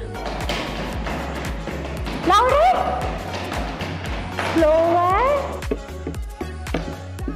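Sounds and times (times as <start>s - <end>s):
children tapping on surfaces to imitate rain: 0.2s - 5.0s
speech: 2.3s - 3.0s, 4.6s - 5.0s.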